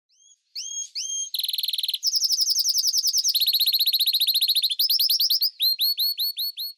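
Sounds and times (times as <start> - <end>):
canary Serinus canaria singing: 0.1 - 6.7.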